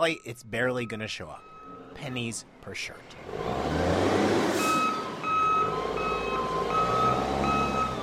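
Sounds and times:
reversing beeps from a container handler at a port in Colombia: 0:00.0 - 0:02.2, 0:04.6 - 0:08.0
speech: 0:00.0 - 0:03.9
rumble of diesel engines at a port: 0:00.0 - 0:08.0.

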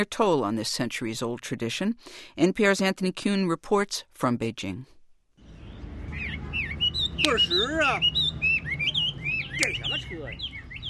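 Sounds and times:
speech: 0:00.0 - 0:05.0, 0:07.2 - 0:08.3, 0:09.6 - 0:10.5
many small caged songbirds chirping and trilling: 0:05.4 - 0:10.8
low murmur of outdoor noise: 0:05.5 - 0:10.8.

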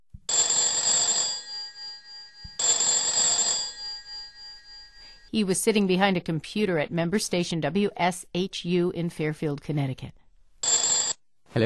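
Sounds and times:
Skype call ringing like an old-fashioned telephone bell: 0:00.3 - 0:05.3, 0:10.6 - 0:11.2
speech: 0:05.3 - 0:10.2.

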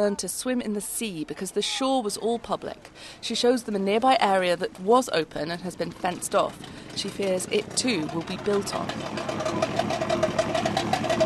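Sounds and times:
speech: 0:00.0 - 0:09.9
boat engine idling: 0:04.2 - 0:11.2.

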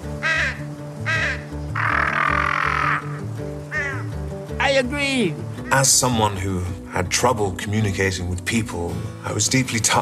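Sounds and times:
crow cawing: 0:00.1 - 0:04.3, 0:05.5 - 0:05.9
speech: 0:04.8 - 0:09.9.

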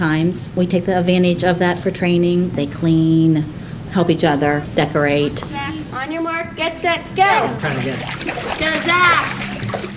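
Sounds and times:
speech: 0:00.0 - 0:09.9
children splashing water in a water table while racing toy boats: 0:07.5 - 0:09.9
children's lively overlapping voices: 0:08.6 - 0:09.6.

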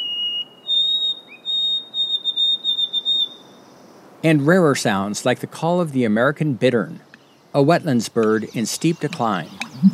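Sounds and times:
White-throated sparrow song with clear whistled notes in Acadia National Park: 0:00.0 - 0:04.0, 0:08.3 - 0:09.9
speech: 0:04.2 - 0:09.9.

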